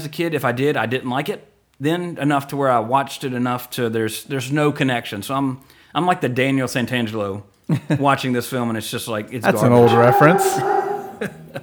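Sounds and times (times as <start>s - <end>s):
speech: 0.0s - 11.6s
dog making a strange demon-like guttural groan: 9.2s - 11.6s
laughter: 9.3s - 11.6s.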